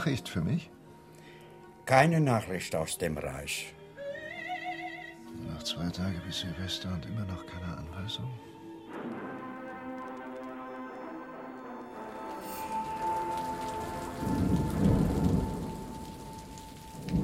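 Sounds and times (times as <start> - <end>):
speech: 0.0 - 0.8, 1.9 - 3.8, 5.4 - 9.2
heavy rain pouring in a thunderstorm: 11.9 - 17.2
deep rumble of thunder: 12.0 - 17.2.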